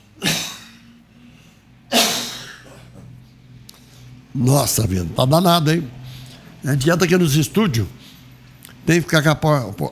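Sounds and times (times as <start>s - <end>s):
person coughing in a studio: 0.2s - 0.8s, 1.9s - 3.1s
speech: 4.4s - 6.0s, 6.6s - 8.0s, 8.8s - 9.8s.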